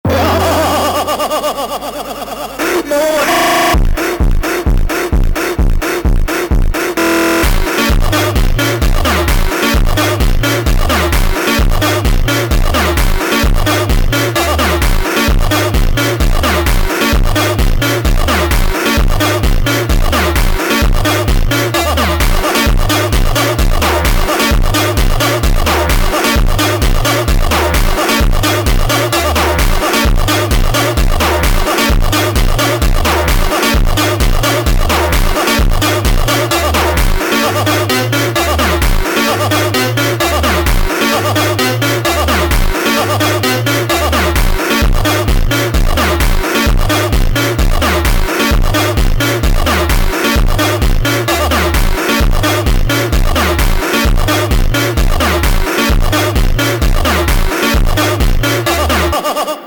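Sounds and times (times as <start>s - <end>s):
person laughing: 0.0s - 6.0s, 58.7s - 59.6s
funk phonk music: 0.0s - 59.6s.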